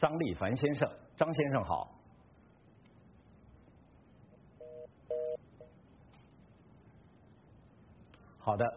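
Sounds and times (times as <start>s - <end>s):
speech: 0.0s - 2.0s, 8.4s - 8.7s
faint low hiss: 0.0s - 8.7s
short electronic telephone dialing tones: 4.6s - 5.4s.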